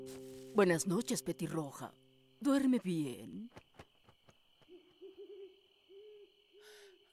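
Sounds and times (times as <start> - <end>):
speech: 0.6 - 3.6
soft low owl hoots: 4.7 - 6.6.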